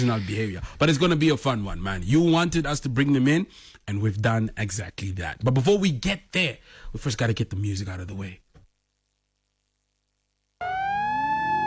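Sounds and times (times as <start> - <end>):
speech: 0.0 - 8.4
siren wailing: 10.6 - 11.6.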